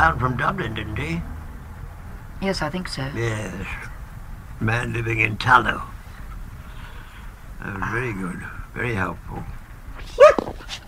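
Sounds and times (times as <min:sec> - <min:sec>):
speech: 0:00.0 - 0:01.4, 0:02.4 - 0:03.9, 0:04.6 - 0:05.9, 0:07.6 - 0:10.8
dog whining softly: 0:10.0 - 0:10.8
dog giving a short high-pitched yelp: 0:10.1 - 0:10.8.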